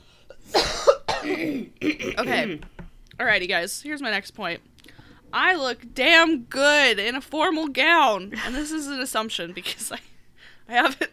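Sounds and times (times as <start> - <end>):
sick person coughing harshly: 0.5 - 2.6
speech: 1.4 - 4.7, 5.3 - 10.1, 10.7 - 11.1.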